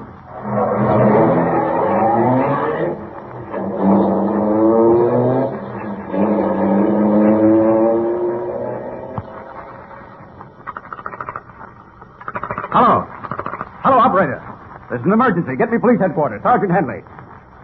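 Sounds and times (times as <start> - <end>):
passing car engine revving and pulling away through gear changes: 0.3 - 10.3
speech: 15.1 - 17.1.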